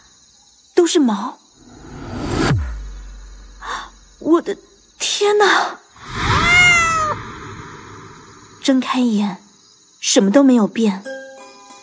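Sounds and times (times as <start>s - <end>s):
speech: 0.8s - 1.4s, 4.2s - 6.2s, 8.7s - 9.4s, 10.0s - 11.1s
cat meowing: 6.0s - 8.3s.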